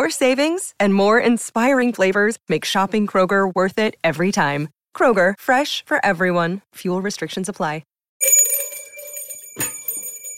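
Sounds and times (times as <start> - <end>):
speech: 0.1 - 8.3
bell struck: 8.2 - 10.3.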